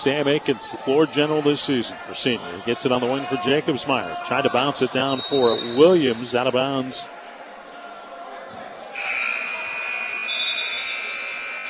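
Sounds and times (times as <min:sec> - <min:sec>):
speech: 0:00.0 - 0:07.2
high school basketball game buzzer sounding for a substitution: 0:09.0 - 0:11.6.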